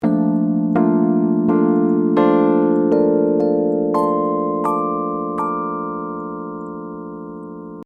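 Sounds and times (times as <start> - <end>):
Rhodes electric piano loop: 0.0 - 7.8.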